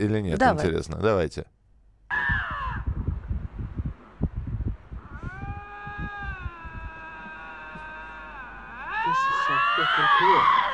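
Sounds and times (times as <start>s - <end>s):
speech: 0.0s - 1.6s
two lynxes yowling at each other on a road: 2.1s - 2.9s, 5.0s - 10.7s.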